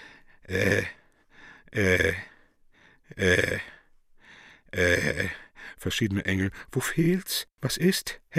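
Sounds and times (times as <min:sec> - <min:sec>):
softer breathy sounds: 0:00.0 - 0:05.8
old man groaning and moaning hoarsely: 0:00.4 - 0:01.0, 0:01.7 - 0:02.4, 0:03.1 - 0:03.8, 0:04.7 - 0:05.4
speech: 0:00.5 - 0:01.0, 0:01.7 - 0:02.3, 0:03.1 - 0:03.7, 0:04.7 - 0:08.3.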